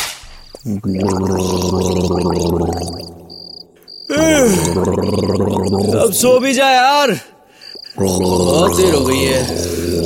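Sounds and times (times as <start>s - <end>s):
speech: 0.6s - 3.1s, 4.1s - 7.3s, 8.0s - 10.0s
person gargling with warm water at home: 0.6s - 3.3s, 4.1s - 6.4s, 8.0s - 10.0s.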